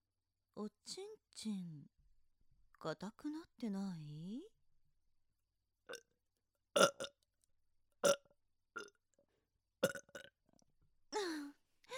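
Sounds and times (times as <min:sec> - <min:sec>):
speech: 0:00.6 - 0:02.0, 0:02.8 - 0:04.6
burps: 0:06.8 - 0:07.2, 0:08.0 - 0:09.0, 0:09.8 - 0:10.4.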